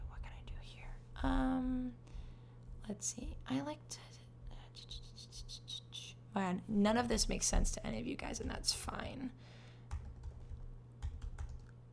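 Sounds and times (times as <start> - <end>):
speech: 1.2 - 2.0, 2.9 - 4.2, 6.4 - 9.5
faint typing on a computer keyboard: 9.9 - 11.8.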